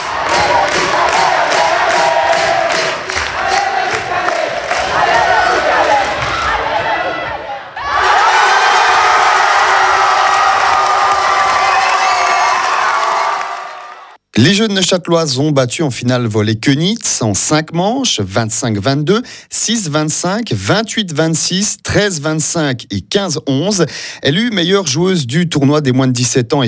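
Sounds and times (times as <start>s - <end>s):
crowd cheering at match point of an under-17 girls' volleyball final: 0.0s - 14.2s
speech: 14.4s - 26.6s.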